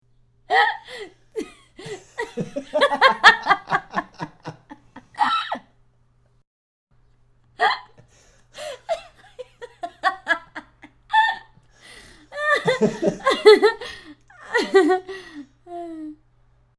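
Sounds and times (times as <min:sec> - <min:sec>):
two people laughing: 0:00.5 - 0:05.6, 0:08.6 - 0:11.4, 0:12.3 - 0:15.4.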